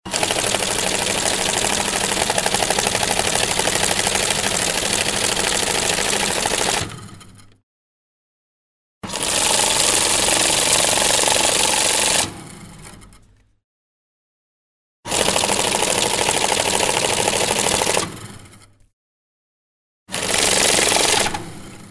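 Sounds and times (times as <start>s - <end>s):
banknote counting machine counting money: 0.1s - 6.8s, 9.4s - 12.2s, 15.2s - 18.0s, 20.2s - 21.6s.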